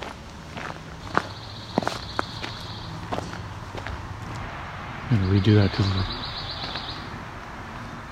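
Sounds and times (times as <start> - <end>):
steady broadband outdoor noise: 0.0 - 8.0
pine warbler singing: 1.1 - 3.6, 5.1 - 7.2
speech: 5.1 - 6.2.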